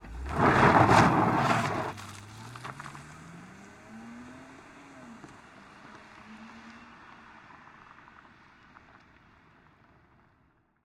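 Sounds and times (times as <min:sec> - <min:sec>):
BMW 323i tyres peeling out and fishtailing on dirt: 0:00.0 - 0:03.1
2007 BMW 323i peeling out and accelerating hard away on dirt: 0:00.0 - 0:07.5.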